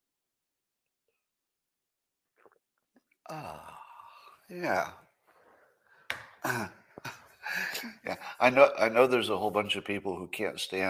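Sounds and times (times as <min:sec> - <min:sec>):
mouth and cup noises: 0:02.2 - 0:03.3
speech: 0:03.3 - 0:03.8, 0:04.5 - 0:05.0, 0:06.4 - 0:10.8.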